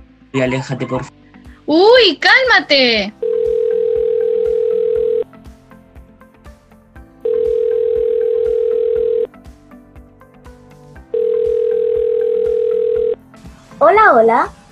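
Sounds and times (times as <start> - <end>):
faint musical background: 0.0 - 14.6
speech: 0.3 - 3.2, 14.1 - 14.6
video call ringtone: 3.2 - 5.3, 7.2 - 9.3, 11.1 - 13.2.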